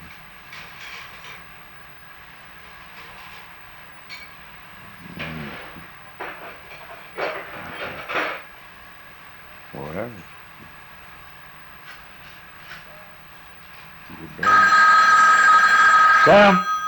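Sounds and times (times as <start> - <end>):
phone with a loud steady electronic ring: 14.4 - 16.8
speech: 16.3 - 16.7.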